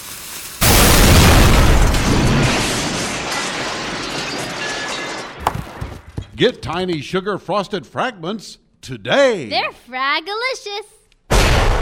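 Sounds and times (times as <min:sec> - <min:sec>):
dynamite blast set off in a hole after a lit fuse: 0:00.6 - 0:05.8, 0:11.3 - 0:11.8
speech: 0:06.4 - 0:11.0.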